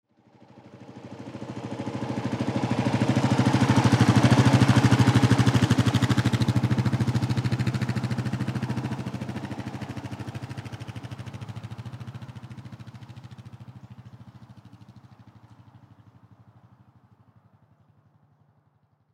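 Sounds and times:
Kawasaki motorcycle passing by slowly: 0.1 - 19.1.

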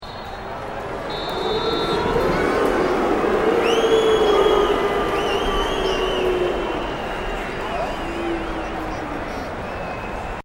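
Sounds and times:
soccer crowd of 20000 booing at Docklands Stadium: 0.3 - 10.4.

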